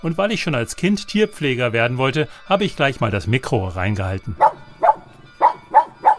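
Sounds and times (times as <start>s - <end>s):
speech: 0.0s - 4.6s
small pug-mix dog barking: 4.4s - 6.1s.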